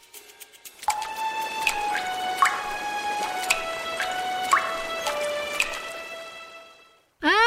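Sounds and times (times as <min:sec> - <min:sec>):
water dripping in a resonant space: 0:00.8 - 0:06.6.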